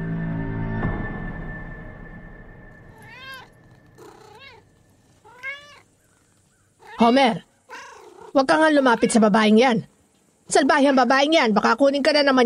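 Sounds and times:
pet cat meowing: 2.8s - 9.2s
speech: 7.0s - 7.5s, 8.4s - 9.9s, 10.5s - 12.4s.

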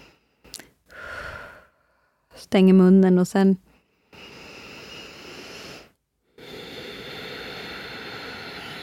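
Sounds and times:
person exhaling during yoga breathing on a mat: 0.0s - 2.2s, 4.1s - 8.8s
soft breath intake: 0.0s - 2.3s, 3.7s - 8.8s
speech: 2.4s - 3.6s.

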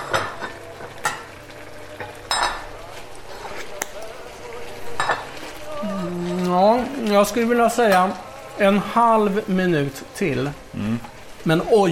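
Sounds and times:
linguine simmering in clam broth in a pan: 0.0s - 11.9s
utensil scraping and clinking against a pan while stirring linguine: 3.0s - 9.4s
speech: 7.2s - 11.9s.

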